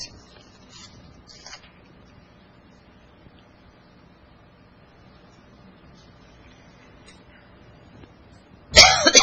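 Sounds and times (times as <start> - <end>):
harsh cough from a man with a throat tickle at a church service: 8.7 - 9.2.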